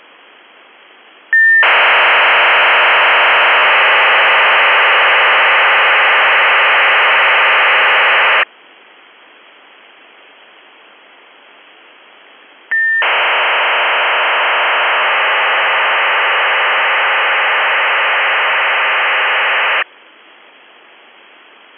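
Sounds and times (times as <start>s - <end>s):
RFSM 2400 baud data signal connecting: 1.4s - 8.4s, 12.7s - 19.8s.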